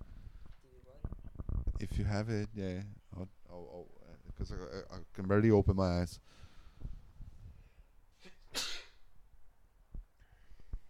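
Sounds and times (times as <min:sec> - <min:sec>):
speech: 0:01.8 - 0:06.5
faint breathing: 0:06.2 - 0:08.2, 0:10.2 - 0:10.8
person sneezing: 0:08.2 - 0:09.1.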